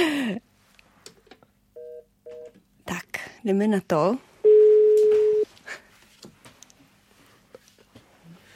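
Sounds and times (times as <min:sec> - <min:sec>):
phone ringback tone: 0:01.8 - 0:02.5, 0:04.4 - 0:05.5
speech: 0:02.9 - 0:04.3
short dialing beeps: 0:04.5 - 0:05.4.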